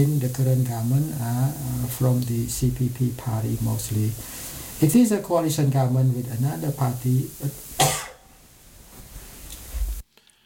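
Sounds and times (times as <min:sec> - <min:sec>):
speech: 0:00.0 - 0:07.7
person coughing during an interview conversation: 0:07.8 - 0:08.3.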